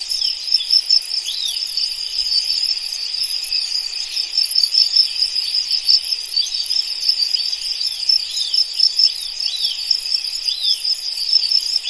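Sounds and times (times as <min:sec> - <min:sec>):
several crickets chirping in a dense chorus: 0:00.0 - 0:11.8.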